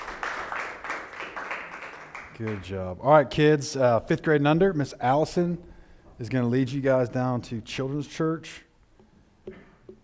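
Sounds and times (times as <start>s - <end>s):
audience applause: 0.0s - 2.7s
speech: 2.4s - 8.7s.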